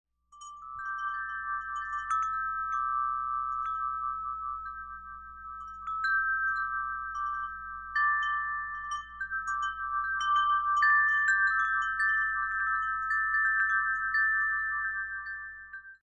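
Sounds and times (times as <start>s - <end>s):
bronze carillon bells: 0.3s - 16.0s.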